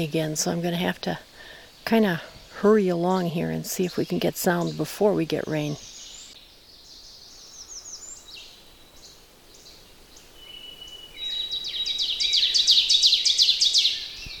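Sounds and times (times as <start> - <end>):
speech: 0.0 - 5.9
ovenbird singing teacher phrases: 0.0 - 14.3
other birds whistling and trilling: 3.8 - 14.3.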